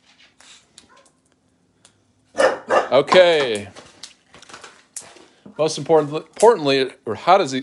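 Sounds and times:
dog yipping: 0.9s - 1.2s, 2.4s - 3.0s
speech: 2.9s - 3.8s, 5.6s - 7.6s.

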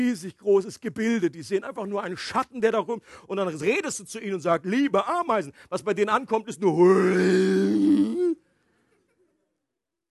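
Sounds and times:
speech: 0.0s - 8.4s
deep rumbling voice imitating a whale-like call: 6.7s - 8.4s.

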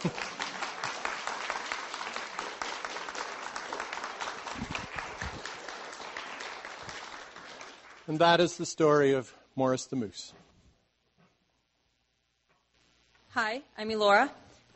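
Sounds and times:
speech: 0.0s - 0.3s, 8.1s - 10.4s, 13.4s - 14.4s
audience applause: 0.0s - 8.6s.

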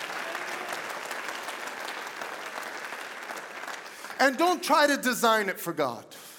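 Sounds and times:
large audience clapping hands: 0.0s - 4.9s
speech: 4.2s - 6.3s.

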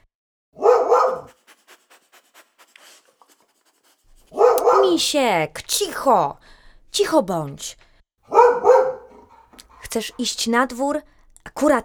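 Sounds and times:
dog barking: 0.6s - 2.0s, 4.3s - 5.2s, 8.3s - 10.4s
soft panting or scratching: 1.0s - 4.8s, 8.9s - 10.7s
speech: 4.9s - 7.8s, 10.0s - 11.8s.

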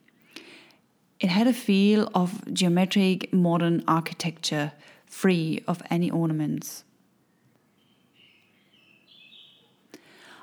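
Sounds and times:
speech: 1.2s - 6.9s
faint birdsong of thin high whistled notes: 6.8s - 10.4s.

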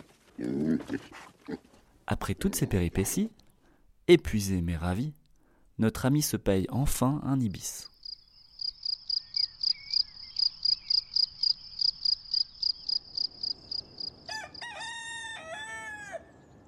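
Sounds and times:
speech: 0.4s - 3.4s, 4.1s - 5.2s, 5.8s - 7.9s
crickets chirping: 7.8s - 14.3s
rooster crowing: 14.2s - 16.4s.

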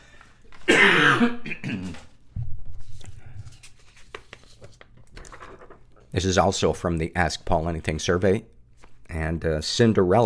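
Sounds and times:
person coughing with rough hacks: 0.6s - 2.1s
low rumbling throat clearing: 0.7s - 2.1s
speech: 1.2s - 1.7s, 6.2s - 8.6s, 9.3s - 10.2s.

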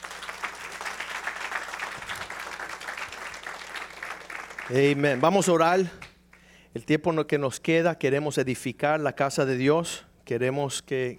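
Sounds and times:
church audience applauding: 0.0s - 6.1s
speech: 4.7s - 6.1s, 6.8s - 11.1s.

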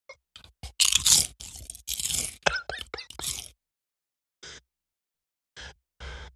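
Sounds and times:
crunching chomps on red hot barbecue potato chips: 0.6s - 3.5s.

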